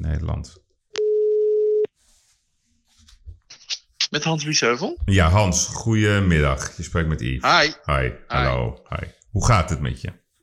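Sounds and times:
speech: 0.1 - 0.7, 4.1 - 10.2
outgoing telephone call ringing tone: 1.0 - 1.9
soft rustling: 1.9 - 3.5.

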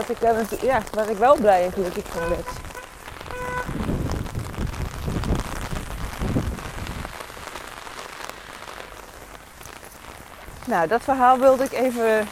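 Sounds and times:
speech: 0.0 - 2.6, 10.7 - 12.3
rain pattering and ticking on a hard surface: 0.0 - 12.3
low rumbling: 0.1 - 7.3.

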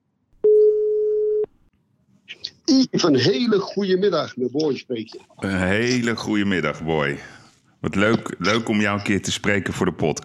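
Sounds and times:
telephone ringing tone during an outgoing call: 0.4 - 1.5
speech: 2.7 - 10.2.

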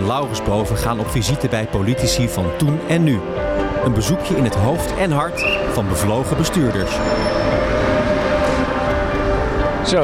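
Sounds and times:
speech: 0.1 - 7.8, 9.8 - 10.0
train departing station, rumble of rolling wheels and engine hum: 4.5 - 10.0.

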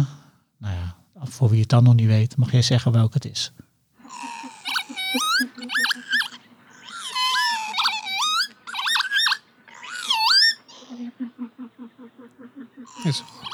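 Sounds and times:
speech: 0.0 - 3.6, 13.0 - 13.5
northern lapwing giving wheezy pee-wit calls in flight: 4.0 - 13.5.

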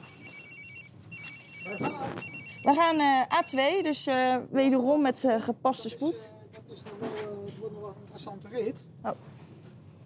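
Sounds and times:
pager alert beeping in bright rapid electronic tones: 0.0 - 4.0
speech: 1.8 - 6.9, 8.2 - 9.4.

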